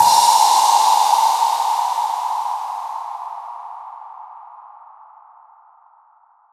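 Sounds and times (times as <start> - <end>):
crash cymbal: 0.0 - 5.0.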